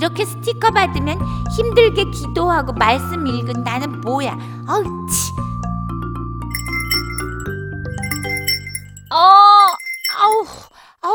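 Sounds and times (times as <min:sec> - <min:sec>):
speech: 0:00.0 - 0:05.6, 0:09.1 - 0:09.4
bell ringing with bright sustained tones: 0:06.5 - 0:10.6.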